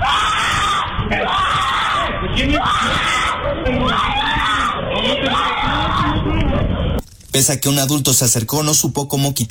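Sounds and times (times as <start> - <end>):
child screaming desperately during dog attack: 0.0 - 6.6
raised voices: 0.0 - 7.0
speech: 7.4 - 9.4.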